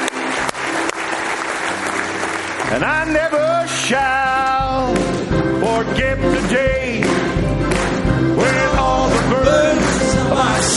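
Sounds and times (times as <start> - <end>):
church congregation clapping hands in praise during a worship service: 0.0 - 5.3, 6.4 - 10.7
speech: 2.7 - 7.6.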